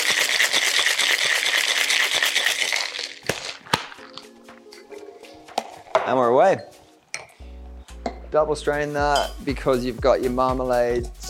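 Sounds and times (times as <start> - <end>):
Boston glass cocktail shaker with ice and Cosmo mix rattling: 0.0 - 4.2
speech: 6.1 - 6.8, 8.3 - 11.2.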